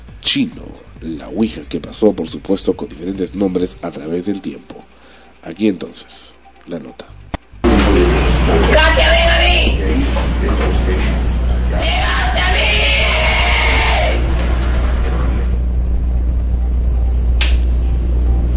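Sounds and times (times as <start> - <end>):
speech: 0.3 - 4.8, 5.4 - 7.2
steady low rumble: 7.6 - 18.5
murmuring voices: 7.7 - 15.6
loud harsh screaming and howling voices: 11.6 - 15.3.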